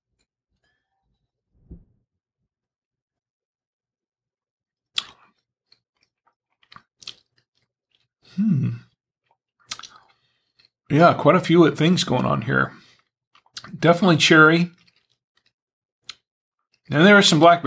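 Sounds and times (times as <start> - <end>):
wet mouth clicks from tasting red wine: 5.0 - 5.4, 9.3 - 10.2
speech: 8.4 - 8.8, 10.9 - 12.8, 13.8 - 14.8, 16.9 - 17.6.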